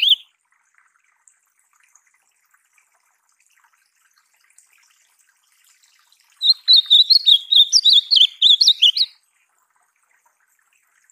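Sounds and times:
ultramarine grosbeak song of clear whistled notes: 0.0 - 0.3, 6.4 - 9.2.

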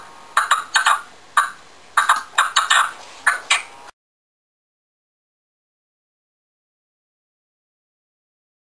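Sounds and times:
partridge song: 0.0 - 3.9.

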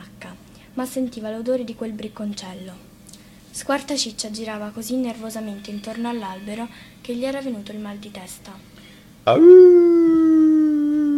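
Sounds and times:
speech: 0.8 - 2.9, 3.6 - 9.9
wolf howling: 9.3 - 11.1.

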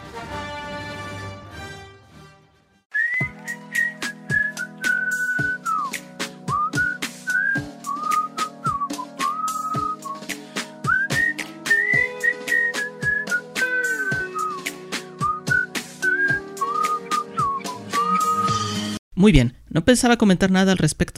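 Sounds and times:
whistled melody opening a song: 2.9 - 19.0
speech: 19.2 - 21.1.

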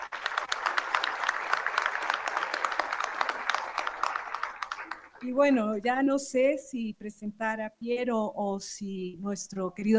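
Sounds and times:
audience applause at a meeting of artists and intellectuals: 0.0 - 5.2
speech: 5.2 - 9.9.

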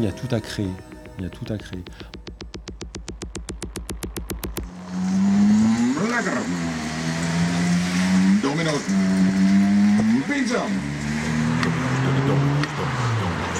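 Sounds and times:
speech: 0.0 - 2.2
sharp clicks: 0.0 - 4.8
designed artificial drive sound of an electric delivery scooter: 0.0 - 13.5.

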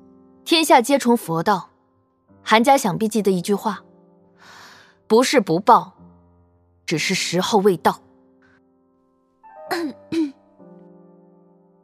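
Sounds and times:
speech: 0.5 - 1.7, 2.5 - 6.0, 6.9 - 8.0, 9.7 - 10.0
light cough from outside a stone pavilion: 9.7 - 10.4.

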